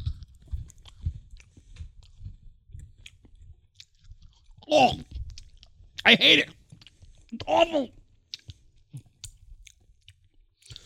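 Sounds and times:
person chewing a dry matcha chocolate cookie: 0:00.0 - 0:10.8
speech: 0:04.7 - 0:05.1, 0:06.1 - 0:06.6, 0:07.4 - 0:08.0.

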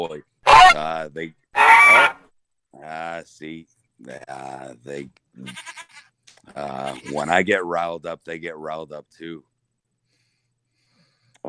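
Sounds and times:
speech: 0:00.0 - 0:02.1, 0:02.8 - 0:09.5
goat bleating on a dock: 0:01.6 - 0:02.2, 0:05.4 - 0:07.3.

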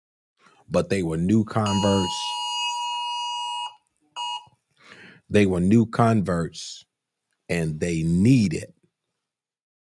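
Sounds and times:
speech: 0:00.7 - 0:02.4, 0:05.3 - 0:06.9, 0:07.5 - 0:08.8
phone emergency alert tone: 0:01.6 - 0:04.5.

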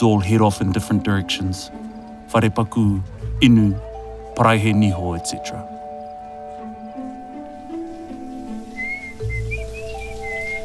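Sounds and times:
speech: 0:00.0 - 0:05.7
steady background of sustained tones: 0:00.0 - 0:10.6
person whistling a short melodic tune: 0:08.7 - 0:10.6.

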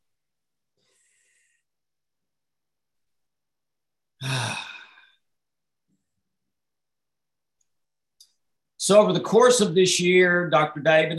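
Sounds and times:
slow deep breath during a relaxation exercise: 0:00.7 - 0:01.8
speech: 0:08.8 - 0:11.1.

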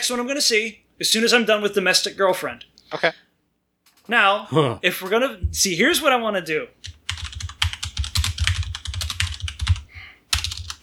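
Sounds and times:
speech: 0:00.0 - 0:03.3, 0:04.1 - 0:07.0
fingers typing on a computer keyboard: 0:06.8 - 0:10.8.

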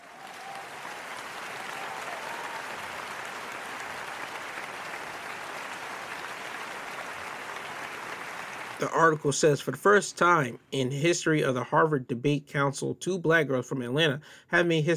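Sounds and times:
crowd applauding: 0:00.0 - 0:09.4
speech: 0:08.8 - 0:14.9.

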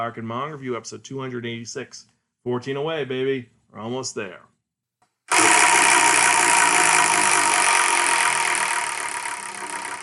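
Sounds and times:
speech: 0:00.0 - 0:04.5
large two-foot prize wheel spinning with rattling whir: 0:05.3 - 0:10.0.

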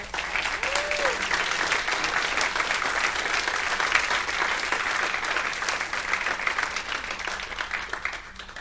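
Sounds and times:
large crowd applauding: 0:00.0 - 0:08.6.

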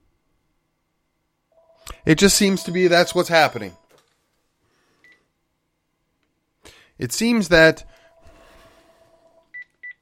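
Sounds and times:
faint hum: 0:00.0 - 0:10.0
short high electronic phone beeps: 0:01.6 - 0:03.9, 0:08.0 - 0:10.0
speech: 0:02.0 - 0:03.8, 0:07.0 - 0:08.0.

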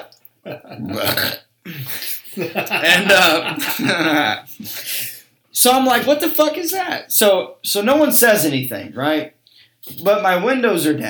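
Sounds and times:
speech: 0:00.0 - 0:01.4, 0:02.4 - 0:04.8, 0:05.6 - 0:11.0
loud burp and belch: 0:00.0 - 0:02.0, 0:02.8 - 0:04.5
laughter: 0:01.8 - 0:05.2.

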